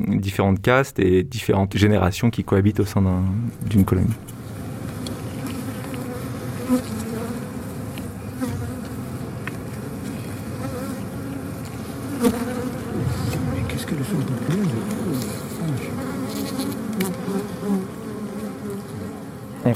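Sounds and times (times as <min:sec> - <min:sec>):
speech: 0:00.0 - 0:04.4
wild bees buzzing: 0:04.3 - 0:19.6.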